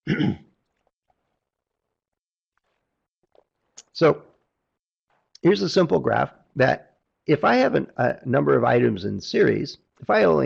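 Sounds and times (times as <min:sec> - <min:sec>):
rough throat clearing: 0:00.0 - 0:00.5
speech: 0:00.0 - 0:00.5, 0:04.0 - 0:04.3, 0:05.4 - 0:10.4
short coughing burst: 0:00.0 - 0:00.6.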